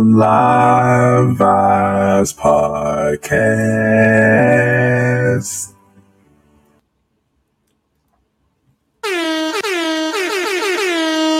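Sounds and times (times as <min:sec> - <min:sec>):
speech: 0:00.0 - 0:05.8
air horn blast: 0:09.0 - 0:11.3.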